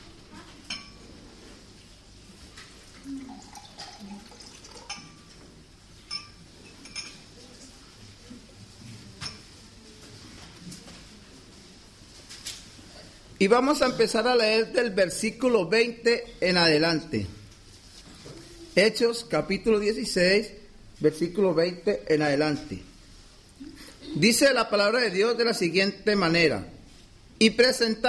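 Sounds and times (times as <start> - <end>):
soft room hum: 0.0 - 28.0
glass clinking: 0.7 - 1.0, 3.3 - 5.4, 6.0 - 7.3
small liquid sounds: 2.8 - 5.4
person quietly drinking water: 3.0 - 4.9
speech: 13.4 - 17.4, 18.8 - 22.9, 24.2 - 26.7, 27.4 - 28.0.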